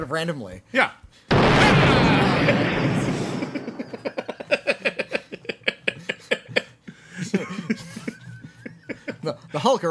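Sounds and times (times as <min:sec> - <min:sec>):
speech: 0:00.0 - 0:03.0, 0:09.5 - 0:09.8
explosion sound effect: 0:01.3 - 0:04.4
rhythmic laughter: 0:02.3 - 0:09.6.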